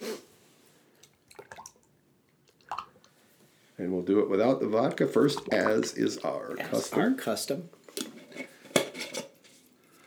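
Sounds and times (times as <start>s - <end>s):
tomato-based drink mix poured from a 32-ounce mason jar in glugs and splashes: 1.0s - 3.2s, 4.5s - 7.2s
speech: 3.8s - 7.8s.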